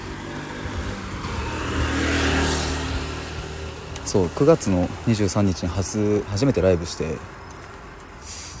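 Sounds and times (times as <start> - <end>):
motorbike engine passing by: 0.0 - 5.4
road noise: 0.0 - 8.5
speech: 4.1 - 7.4.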